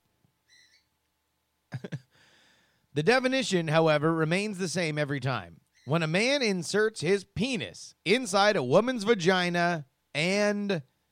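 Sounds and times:
loose pet bird chirping in a studio: 0.5s - 0.9s
speech: 3.0s - 10.9s.

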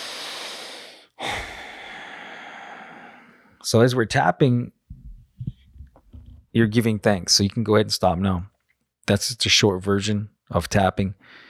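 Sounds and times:
nasal breathing during a relaxation tapping exercise: 0.0s - 3.6s
speech: 3.7s - 4.8s, 6.6s - 8.5s, 9.1s - 11.4s.

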